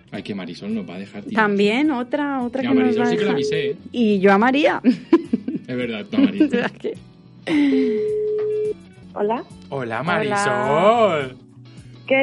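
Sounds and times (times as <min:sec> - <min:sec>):
speech: 0:00.5 - 0:05.1, 0:05.7 - 0:08.0, 0:09.2 - 0:11.4, 0:12.1 - 0:12.2
electronic telephone ringback tune: 0:02.8 - 0:03.8, 0:07.9 - 0:08.8
laughter: 0:04.8 - 0:06.8.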